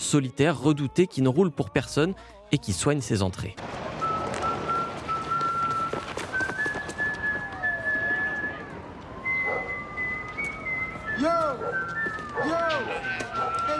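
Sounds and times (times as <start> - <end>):
speech: 0.1 - 3.8
man whistling a slow drawn-out tune: 4.0 - 13.7.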